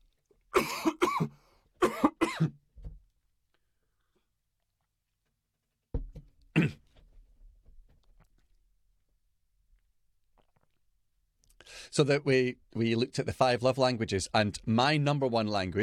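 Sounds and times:
harsh coughs: 0.6s - 2.6s, 6.5s - 6.9s
throat clearing: 6.5s - 6.9s
speech: 12.0s - 15.8s.

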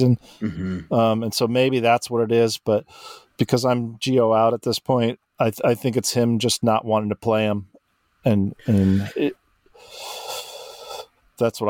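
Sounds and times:
speech: 0.0s - 10.2s, 11.4s - 11.6s
big yawn with voiced groans: 0.4s - 1.0s, 8.6s - 9.3s.

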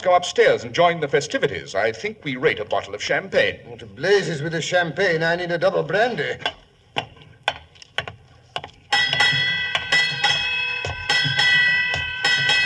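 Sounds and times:
speech: 0.0s - 6.6s
ship's bell ringing eight bells: 8.9s - 12.6s.

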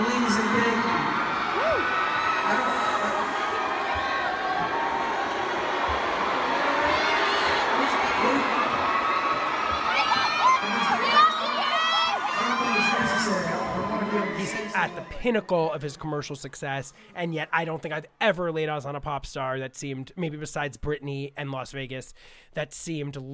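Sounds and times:
large concert crowd screaming and cheering: 0.0s - 16.3s
speech: 15.2s - 23.3s.

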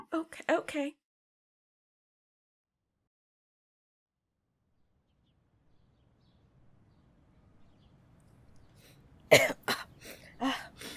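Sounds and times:
speech: 0.1s - 1.0s, 9.3s - 9.7s
person coughing from allergies: 9.3s - 10.9s.

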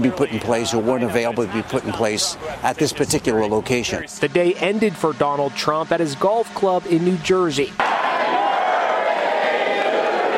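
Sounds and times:
speech: 0.0s - 7.9s
large crowd singing outdoors: 7.8s - 10.3s.

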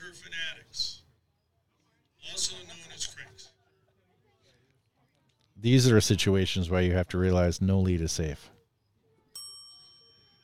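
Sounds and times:
speech: 0.1s - 1.0s, 2.2s - 3.6s, 5.6s - 8.6s
bell rung to mark a pitch at a vintage baseball game: 9.4s - 10.4s.

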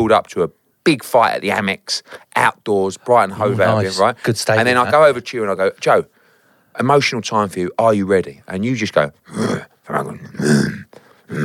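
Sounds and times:
speech: 0.0s - 6.2s, 6.8s - 11.4s
man imitating an aggressive growl: 9.3s - 11.4s.

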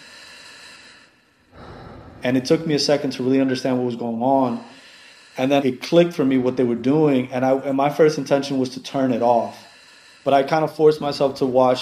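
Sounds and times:
heavy airy breathing of a person on a television broadcast: 0.0s - 7.0s, 9.4s - 10.6s
speech: 2.2s - 4.7s, 5.4s - 9.6s, 10.2s - 11.7s.

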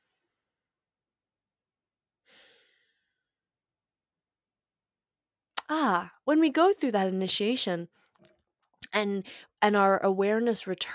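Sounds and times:
deep breath: 2.2s - 3.3s
speech: 5.7s - 8.0s, 9.0s - 10.9s.

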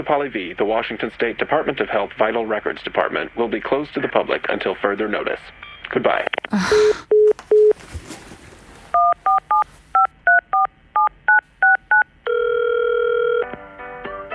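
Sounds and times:
speech: 0.0s - 7.1s
telephone keypad tones dialed into an automated phone menu: 9.0s - 13.5s.

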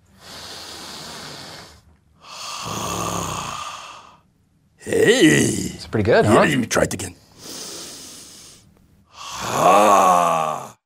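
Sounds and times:
deep belly breathing: 0.0s - 4.3s, 7.2s - 10.8s
speech: 4.9s - 7.2s.

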